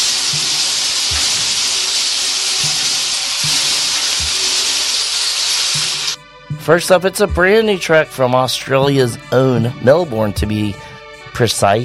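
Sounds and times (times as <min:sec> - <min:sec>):
shuffle drum being spun, rattle of tumbling contents: 0:00.0 - 0:06.0
speech: 0:06.7 - 0:11.8.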